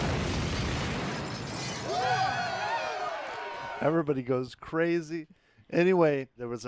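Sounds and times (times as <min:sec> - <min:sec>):
loud rumbling explosion: 0:00.0 - 0:02.0
crashing shattering debris: 0:00.0 - 0:02.7
speech: 0:03.8 - 0:06.6.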